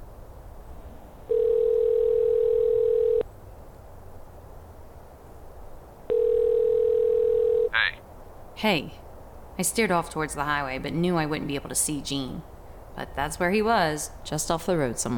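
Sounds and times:
faint hiss: 0.0 - 15.1
phone ringback tone from a call made outdoors: 1.3 - 3.2, 6.1 - 7.7
speech: 8.6 - 9.0, 9.6 - 15.1.

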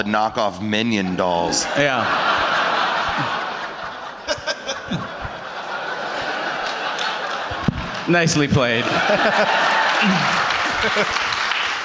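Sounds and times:
speech: 0.0 - 3.4, 8.1 - 11.2
laughter: 1.0 - 11.8
live audience applause: 5.6 - 11.8.

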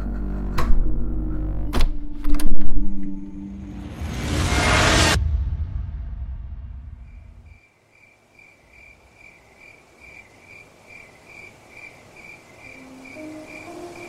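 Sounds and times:
low rumble: 0.2 - 7.6
chorus of crickets chirping: 7.1 - 14.0.

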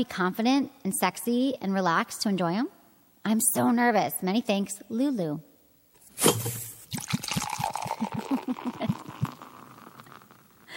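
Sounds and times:
speech: 0.0 - 5.5, 6.2 - 6.7
beer being gulped and swallowed: 6.3 - 10.7.

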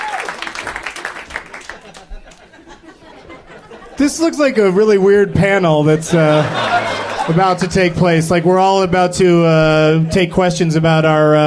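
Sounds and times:
crowd cheering and yelling as performers come on stage: 0.0 - 0.6
scattered clapping: 0.0 - 2.5
laughter: 1.4 - 8.4
speech: 4.0 - 6.6, 7.3 - 11.4.

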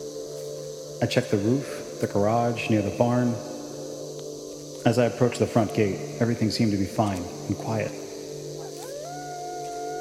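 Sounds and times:
speech: 1.0 - 3.5, 4.8 - 8.0
coyote howling: 8.5 - 9.9.

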